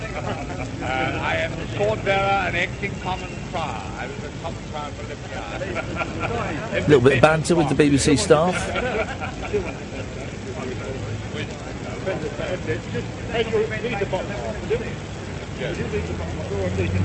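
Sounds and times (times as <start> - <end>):
laughter: 0.0 - 14.8
street traffic rumbling: 0.0 - 17.0
speech: 1.4 - 9.9, 12.1 - 17.0.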